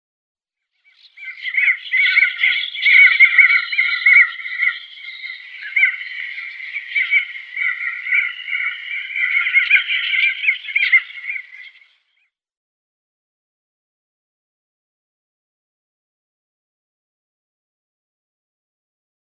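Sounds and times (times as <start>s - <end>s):
Crested Auklet calling: 1.2s - 11.8s.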